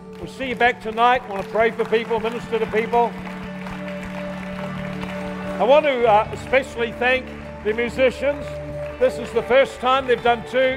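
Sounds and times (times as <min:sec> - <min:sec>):
church audience clapping in celebration: 0:00.0 - 0:10.7
speech: 0:00.2 - 0:03.4, 0:05.6 - 0:10.7.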